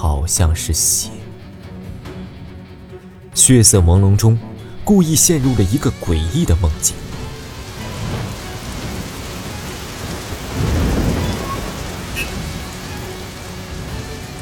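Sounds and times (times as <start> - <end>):
speech: 0.1 - 1.2, 3.4 - 7.1
steady heavy rain over a crossroads: 4.8 - 14.4
low thunder rumble: 5.0 - 14.4.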